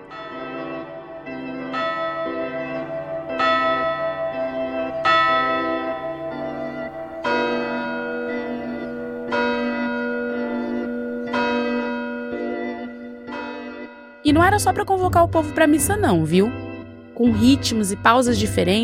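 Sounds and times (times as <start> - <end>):
church bells ringing: 0.0 - 18.8
speech: 14.3 - 16.6, 17.2 - 18.8.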